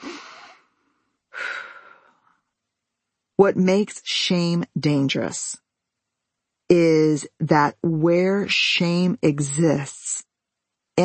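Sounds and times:
deep breaths: 1.3 - 2.4
speech: 3.4 - 5.6, 6.7 - 10.0.

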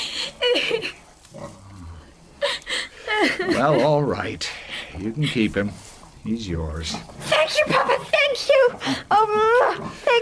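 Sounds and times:
piglet grunting and snorting: 1.3 - 2.1, 6.9 - 10.2
laughter: 2.4 - 4.4
speech: 3.5 - 10.2.

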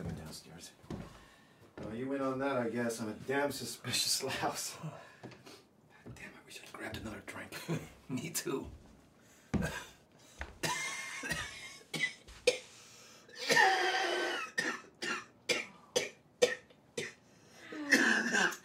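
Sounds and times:
speech: 1.9 - 5.1, 6.8 - 8.8, 9.5 - 9.9
man coughing in a prolonged fit: 9.6 - 10.0, 10.6 - 12.7, 13.3 - 18.6.

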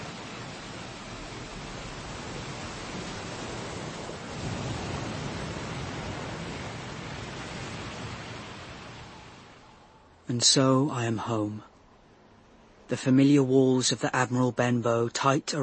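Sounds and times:
ocean surf roar: 0.0 - 15.6
speech: 10.3 - 11.7, 12.9 - 15.6.

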